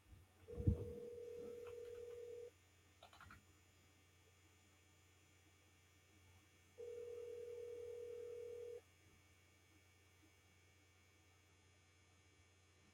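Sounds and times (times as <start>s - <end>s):
telephone ringback tone on an outgoing call: 0.5s - 2.5s, 6.8s - 8.8s.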